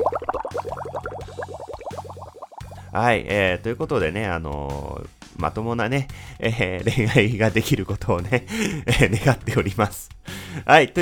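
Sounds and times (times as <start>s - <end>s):
low droning underwater hum: 0.0s - 2.8s
gurgling water bubbles of sinking: 0.0s - 2.9s
speech: 2.9s - 11.0s.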